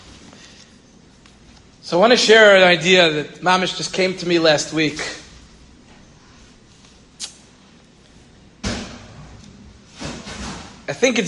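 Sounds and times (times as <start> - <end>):
speech: 1.9 - 5.2, 10.9 - 11.2
door pushed shut with a solid thud: 8.6 - 10.8.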